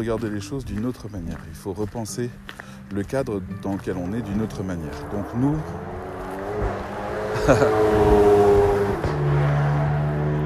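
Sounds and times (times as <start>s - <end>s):
speech: 0.0s - 6.0s, 7.4s - 8.3s
car engine revving and roaring as it drives fast on an empty road: 3.7s - 10.4s
laughter: 7.3s - 8.0s.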